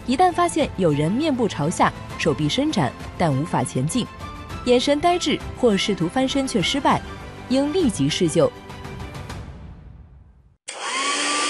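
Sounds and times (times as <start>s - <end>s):
speech: 0.1s - 8.6s
hair dryer blowing while drying hair: 10.7s - 11.4s.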